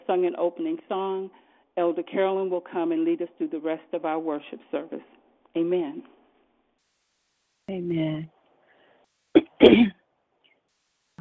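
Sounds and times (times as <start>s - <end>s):
speech: 0.1s - 6.2s, 7.7s - 8.4s, 9.3s - 10.0s
person coughing: 9.4s - 10.0s.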